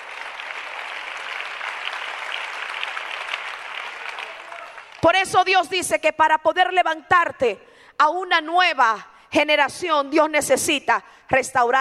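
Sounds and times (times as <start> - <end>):
applause from a large crowd: 0.0 - 5.0
speech: 5.0 - 11.8.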